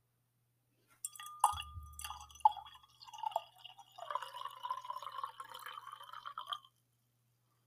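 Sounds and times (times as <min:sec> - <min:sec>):
glassy clink of a glass decanter: 0:01.0 - 0:06.7
liquid pouring from a glass decanter: 0:01.1 - 0:06.8
fine crackling bubbles fizzing: 0:01.9 - 0:06.7.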